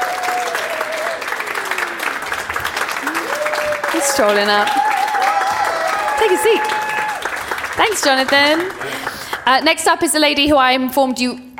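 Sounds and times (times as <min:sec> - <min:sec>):
live audience clapping: 0:00.0 - 0:10.3
speech: 0:04.0 - 0:04.8, 0:06.2 - 0:06.8, 0:07.8 - 0:11.5.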